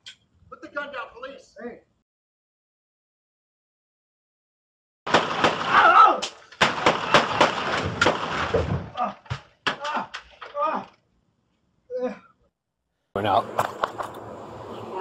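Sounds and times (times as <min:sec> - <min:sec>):
speech: 0:00.1 - 0:01.9, 0:13.2 - 0:13.8
gunshots fired by a police officer at an armed man: 0:05.1 - 0:10.1
people shouting: 0:05.6 - 0:06.4, 0:09.8 - 0:10.9, 0:14.7 - 0:14.9.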